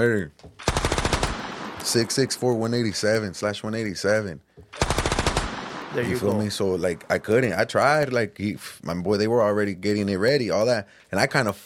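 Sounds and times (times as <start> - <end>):
speech: 0.0 - 0.9, 1.8 - 5.0, 5.9 - 11.6
rapid burst of gunshots sound effect: 0.6 - 2.6, 4.8 - 7.0.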